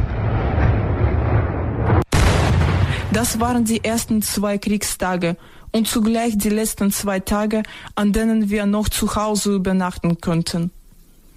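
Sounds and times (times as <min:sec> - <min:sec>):
explosions from artillery attacks: 0:00.0 - 0:04.4
speech: 0:03.1 - 0:10.8.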